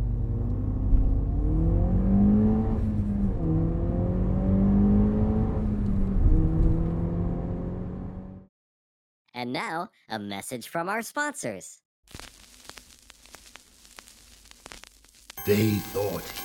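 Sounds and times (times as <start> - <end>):
car engine revving and accelerating away through gear shifts: 0.0 - 8.4
speech: 9.4 - 12.3, 15.4 - 16.4.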